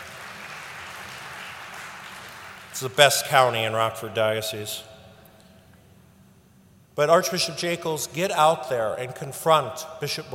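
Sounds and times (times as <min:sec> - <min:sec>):
audience applauding at a speech: 0:00.0 - 0:02.8
speech: 0:02.8 - 0:04.9, 0:07.0 - 0:10.3.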